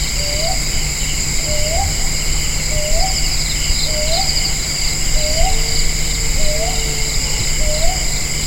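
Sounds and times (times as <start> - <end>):
brown hawk owl Ninox scutulata calling in Thekkady Kerala: 0.1 - 8.3.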